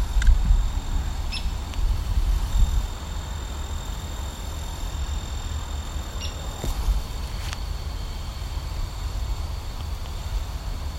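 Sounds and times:
steady low rumble: 0.0s - 10.9s
hairy woodpecker giving sharp high call notes: 1.3s - 1.6s, 6.0s - 6.7s.

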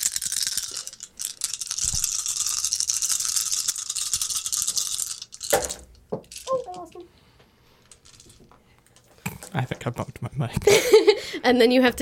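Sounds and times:
whole set of dice rattling and clattering: 0.0s - 7.0s, 7.8s - 8.5s
speech: 9.6s - 12.0s.

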